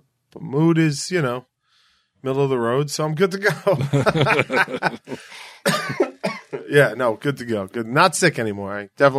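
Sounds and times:
speech: 0:00.4 - 0:01.5, 0:02.2 - 0:06.0, 0:06.7 - 0:09.1
laughter: 0:03.5 - 0:06.9
person coughing with lingering phlegm: 0:04.6 - 0:06.7.

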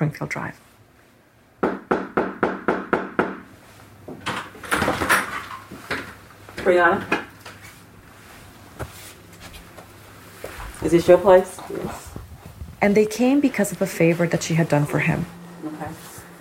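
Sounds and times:
speech: 0:00.0 - 0:00.7, 0:06.6 - 0:07.2, 0:10.9 - 0:12.1, 0:12.8 - 0:16.0
police knocking on apartment door: 0:01.6 - 0:03.4
shuffling movement: 0:07.6 - 0:16.4.

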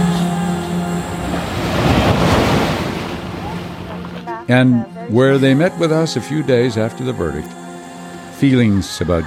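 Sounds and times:
ocean waves breaking at a surf beach: 0:00.2 - 0:04.6
speech: 0:04.5 - 0:07.6, 0:08.4 - 0:09.2.

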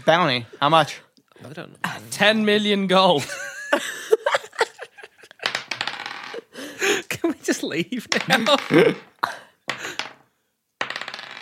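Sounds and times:
speech: 0:00.0 - 0:04.0, 0:07.7 - 0:09.3
laughter: 0:03.2 - 0:05.4, 0:06.4 - 0:09.4
handful of dice clattering across a hard surface: 0:05.4 - 0:06.3, 0:09.7 - 0:10.2, 0:10.8 - 0:11.4.

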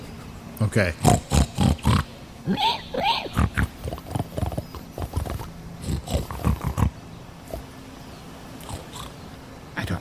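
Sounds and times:
speech: 0:00.6 - 0:01.4, 0:02.4 - 0:03.7
people imitating pig snorts, snuffles and grunts: 0:00.9 - 0:07.0.

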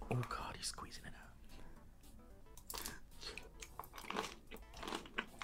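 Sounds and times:
soft whispering: 0:00.1 - 0:01.4
wet crunchy chewing of a jelly-like food: 0:02.5 - 0:05.4.

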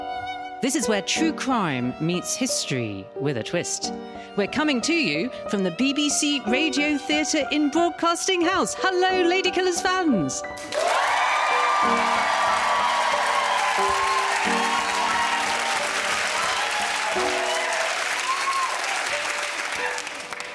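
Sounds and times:
speech: 0:00.6 - 0:10.9, 0:11.8 - 0:12.7
crowd whooping and cheering: 0:10.6 - 0:20.5
large live audience applauding: 0:10.6 - 0:20.5.

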